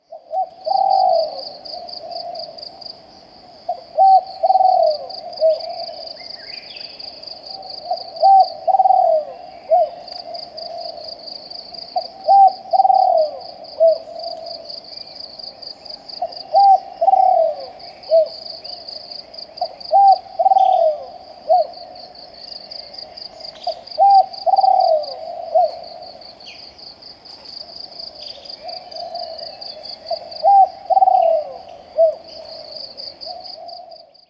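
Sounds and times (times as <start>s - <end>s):
eastern spotted dove calling: 0.0s - 3.0s, 3.7s - 11.2s, 11.9s - 14.8s, 15.9s - 22.0s, 22.8s - 26.7s, 28.1s - 34.2s.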